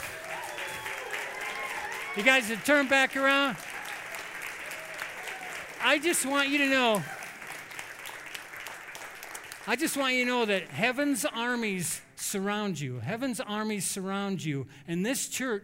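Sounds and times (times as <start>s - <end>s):
crowd applauding in a large room: 0.0s - 10.8s
man speaking loudly: 2.2s - 3.6s, 5.8s - 7.1s, 9.7s - 15.6s
speech: 2.2s - 3.6s, 5.8s - 7.2s, 9.6s - 15.6s.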